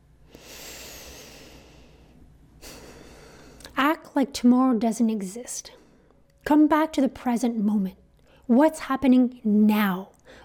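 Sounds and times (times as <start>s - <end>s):
deep breath in and out: 0.2s - 3.7s
speech: 4.2s - 5.8s, 6.5s - 10.4s.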